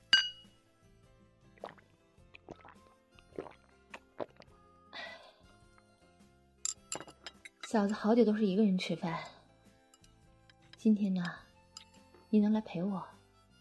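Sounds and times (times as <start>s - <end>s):
glasses clinking in a toast: 0.1s - 0.5s, 6.6s - 8.1s, 11.7s - 12.1s
soft knocks and clatter of tableware: 6.7s - 8.0s
speech: 7.7s - 9.4s, 10.8s - 11.4s, 12.3s - 13.2s.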